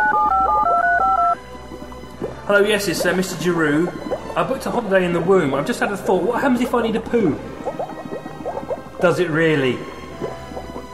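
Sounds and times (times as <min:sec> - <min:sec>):
telephone keypad dialing tones: 0:00.0 - 0:01.4
speech: 0:02.5 - 0:07.6, 0:09.0 - 0:09.9.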